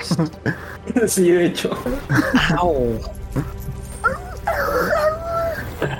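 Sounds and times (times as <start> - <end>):
speech: 0.2 - 3.6
laughter: 1.9 - 3.8
human voice imitating a dying wolf's whimpering sobs: 3.4 - 5.9.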